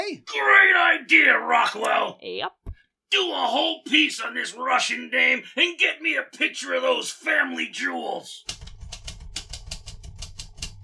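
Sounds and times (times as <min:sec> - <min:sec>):
speech: 0:00.1 - 0:08.6
typing on a typewriter: 0:08.5 - 0:10.8.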